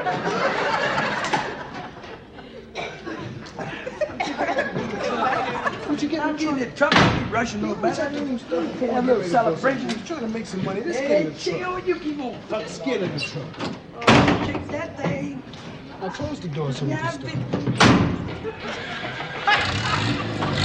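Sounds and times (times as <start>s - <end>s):
several people laughing: 0.0s - 6.5s, 18.2s - 20.6s
several people chatting: 4.2s - 15.4s, 16.0s - 18.0s
door slamming shut: 6.9s - 7.4s, 13.6s - 14.8s, 17.6s - 18.4s.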